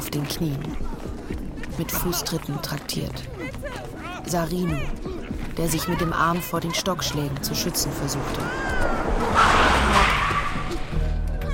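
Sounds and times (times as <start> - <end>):
speech: 0.1 - 1.0, 1.8 - 3.6, 4.2 - 10.2
car tires screeching as it skids to a halt: 7.0 - 11.4.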